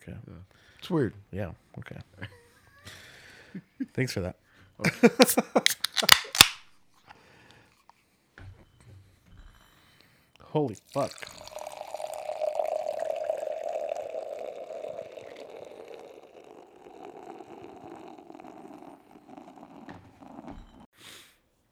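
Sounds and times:
speech: 0:00.1 - 0:02.4, 0:03.6 - 0:06.2, 0:10.5 - 0:11.4
bourbon scotch ale pouring from a can into a glass: 0:10.8 - 0:20.8.

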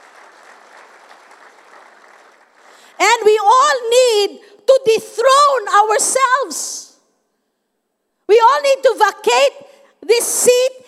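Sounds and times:
audience clapping in praise: 0:00.0 - 0:03.0
speech: 0:03.0 - 0:06.9, 0:08.3 - 0:10.8.

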